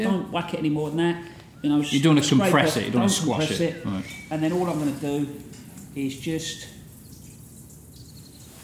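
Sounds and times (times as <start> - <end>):
speech: 0.0 - 6.8
water sprinkling onto compost in a seed tray: 4.4 - 8.6.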